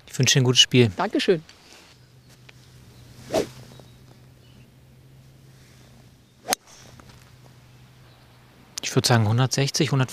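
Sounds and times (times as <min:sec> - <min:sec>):
quiet outdoor hum: 0:00.0 - 0:10.1
speech: 0:00.2 - 0:01.6, 0:09.0 - 0:10.1
golf swing hitting ball with a 7-wood club: 0:02.2 - 0:04.2, 0:06.4 - 0:07.6.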